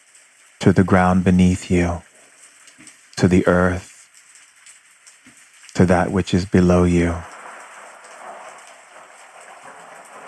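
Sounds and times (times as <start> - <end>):
steady rain falling: 0.0 - 10.2
speech: 0.6 - 2.1, 3.2 - 3.9, 5.8 - 7.3.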